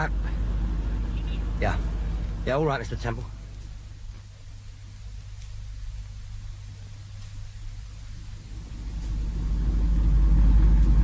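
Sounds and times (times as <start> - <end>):
speech: 0.0 - 0.2, 1.6 - 3.4
car engine running: 0.0 - 11.0.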